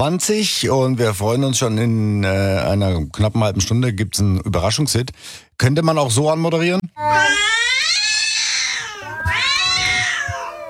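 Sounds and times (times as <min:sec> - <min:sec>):
speech: 0:00.0 - 0:08.2
kittens meowing almost like singing: 0:07.0 - 0:10.6.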